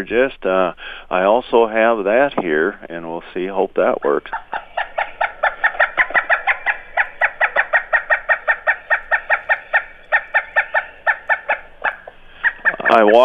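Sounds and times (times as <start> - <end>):
speech: 0.0 - 4.6, 12.9 - 13.2
pileated woodpecker calling in a ringing rapid cackle: 3.5 - 13.2.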